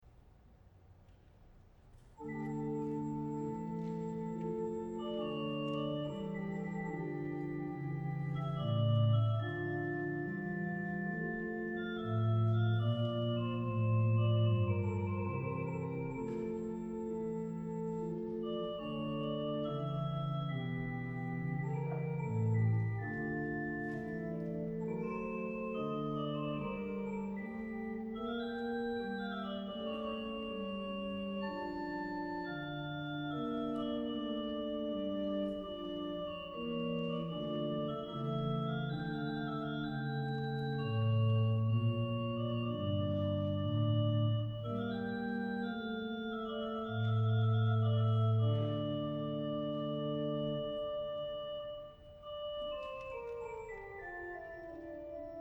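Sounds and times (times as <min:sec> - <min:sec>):
organ concerto adagio in F major: 0:02.2 - 0:55.3.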